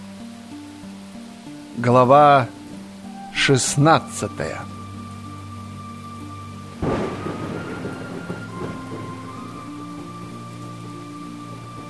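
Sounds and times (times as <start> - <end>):
heavy rain pouring: 0.0 - 11.8
speech: 1.8 - 2.6, 3.4 - 4.7
low rumbling: 2.6 - 11.8.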